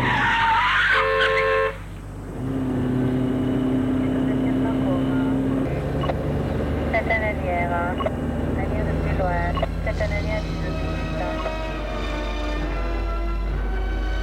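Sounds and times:
car tire squeal: 0:00.0 - 0:01.8
car engine roaring while speeding through city streets: 0:00.0 - 0:14.2.

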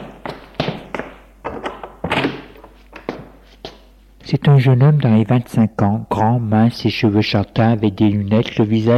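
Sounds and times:
wooden thunks of a door being opened: 0:02.0 - 0:02.5
speech: 0:04.3 - 0:08.9.

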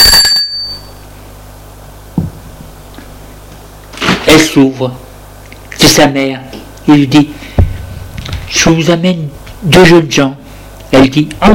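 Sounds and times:
bright metallic bell ringing: 0:00.0 - 0:01.0
soft low thud: 0:02.1 - 0:02.4, 0:07.6 - 0:08.5
speech: 0:04.4 - 0:05.1, 0:05.9 - 0:07.5, 0:08.7 - 0:11.5.

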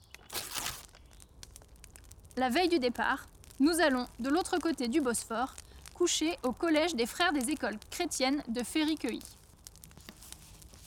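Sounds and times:
faint crinkly paper rustles: 0:00.0 - 0:01.0
paper sheet torn up by an office employee: 0:00.2 - 0:01.0
speech: 0:02.4 - 0:09.4.

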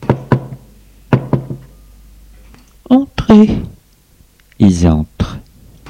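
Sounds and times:
knocking on a door: 0:00.0 - 0:01.6
speech: 0:03.3 - 0:03.7, 0:04.6 - 0:05.4.

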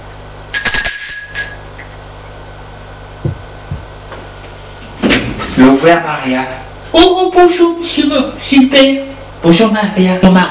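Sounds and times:
doorbell ringing with a bright metallic ring: 0:00.5 - 0:01.8
soft thumps: 0:03.2 - 0:04.3
speech: 0:05.6 - 0:10.4.

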